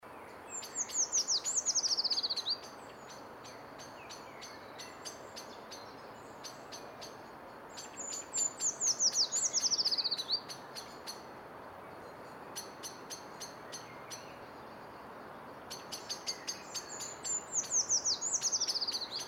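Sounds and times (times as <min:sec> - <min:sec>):
Eurasian treecreeper Certhia familiaris calling: 0:00.1 - 0:19.2.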